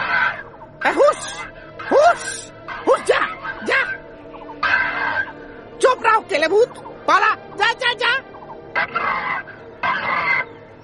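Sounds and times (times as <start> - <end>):
crow cawing: 0.0 - 5.7, 8.4 - 10.8
speech: 0.8 - 3.7, 6.3 - 8.1.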